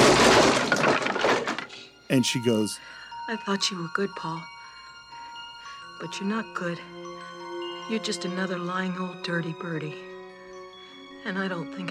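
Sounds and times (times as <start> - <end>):
object smashing against a wall: 0.0 - 1.7
shattering glass-like debris scattering and tinkling: 0.0 - 1.8
speech: 2.1 - 4.5, 6.0 - 7.2, 7.9 - 10.1, 11.2 - 11.8.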